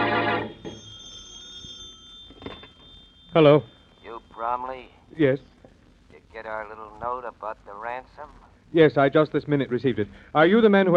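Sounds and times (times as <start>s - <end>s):
old-fashioned telephone bell ringing in a home: 0.0s - 4.7s
speech: 3.4s - 3.7s, 4.4s - 5.5s, 6.4s - 10.9s.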